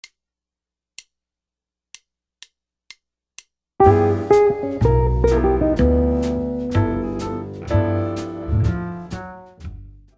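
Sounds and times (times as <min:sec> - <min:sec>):
guitar playing altered scales: 0:03.8 - 0:09.3.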